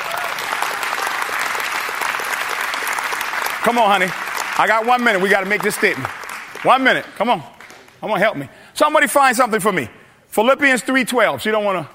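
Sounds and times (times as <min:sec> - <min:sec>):
audience applause: 0:00.0 - 0:08.0
speech: 0:03.6 - 0:11.9.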